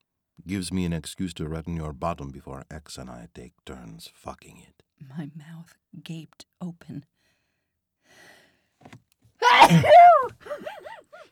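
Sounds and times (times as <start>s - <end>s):
speech: 0.4s - 7.2s, 9.7s - 10.8s
loud sneeze onto a jacket: 9.4s - 10.3s.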